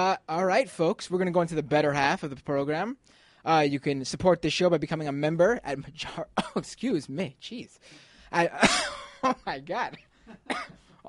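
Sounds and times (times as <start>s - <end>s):
speech: 0.0s - 11.0s
person in a coughing fit: 8.5s - 9.2s, 10.0s - 11.0s
throat clearing: 10.5s - 11.0s.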